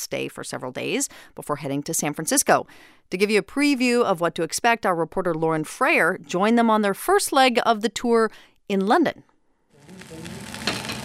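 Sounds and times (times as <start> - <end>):
speech: 0.0 - 9.3, 10.0 - 10.6
beef cheeks sizzling in a pan on a stove: 9.8 - 11.0.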